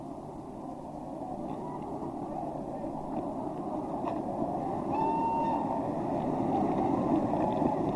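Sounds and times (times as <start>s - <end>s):
train rolling along rails: 1.4s - 7.9s.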